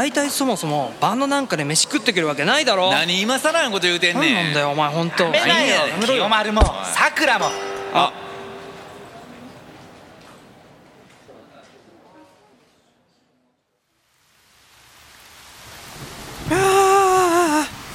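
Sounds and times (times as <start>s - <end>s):
speech: 0.0s - 8.2s
heavy rain in a storm: 14.1s - 17.9s
person calling out loudly: 16.5s - 17.8s.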